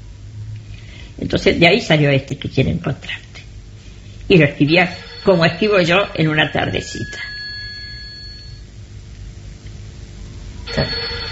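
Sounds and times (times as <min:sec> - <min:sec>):
speech: 0:01.2 - 0:03.3, 0:04.3 - 0:07.3
telephone bell ringing: 0:04.8 - 0:08.6, 0:10.6 - 0:11.3.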